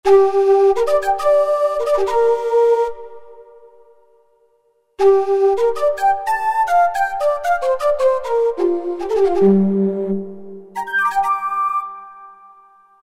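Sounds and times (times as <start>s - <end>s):
Shakuhachi on a Roland MT-32: 0.1s - 3.1s, 5.0s - 10.1s, 10.8s - 13.0s.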